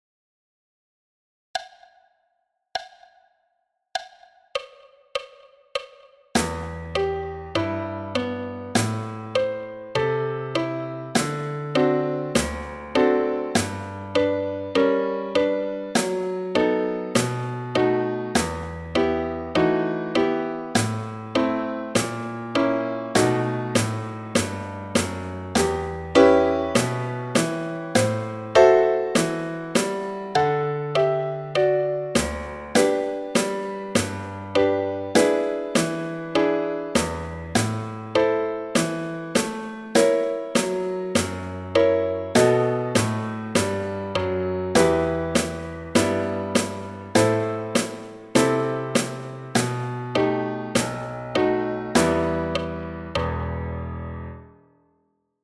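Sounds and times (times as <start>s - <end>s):
drum: 2.8s - 3.2s, 4.0s - 7.2s, 8.8s - 9.5s, 11.2s - 11.5s, 12.4s - 12.8s, 13.6s - 13.9s, 16.0s - 16.3s, 17.2s - 17.5s, 18.4s - 18.8s, 20.8s - 21.1s, 22.0s - 22.3s, 23.2s - 30.4s, 32.2s - 36.2s, 37.0s - 38.0s, 38.8s - 41.6s, 42.4s - 44.0s, 44.8s - 49.9s, 50.8s - 51.1s, 52.0s - 52.7s
piano: 6.4s - 54.8s.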